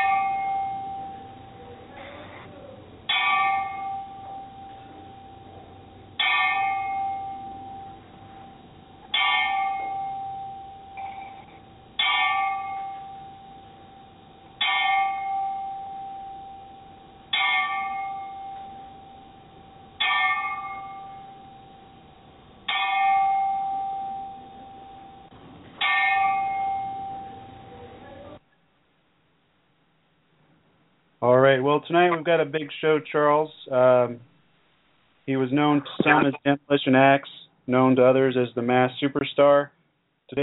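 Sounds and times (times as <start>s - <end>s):
single bell struck in a ten-bell salute: 0.0s - 2.3s, 3.1s - 28.4s
speech: 31.5s - 34.3s, 35.3s - 40.4s.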